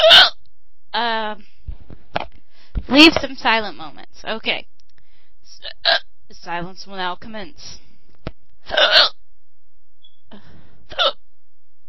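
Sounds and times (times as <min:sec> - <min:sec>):
person hiccuping: 0:00.0 - 0:00.4, 0:08.7 - 0:09.2, 0:10.9 - 0:11.2
speech: 0:02.9 - 0:04.7, 0:05.8 - 0:07.8, 0:08.7 - 0:09.2.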